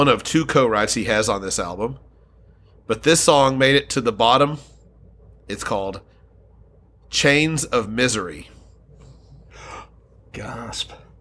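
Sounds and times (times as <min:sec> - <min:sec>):
speech: 0:00.0 - 0:02.1, 0:02.9 - 0:04.7, 0:05.5 - 0:06.1, 0:07.1 - 0:08.5, 0:10.3 - 0:11.0
person gasping dramatically: 0:09.4 - 0:10.0.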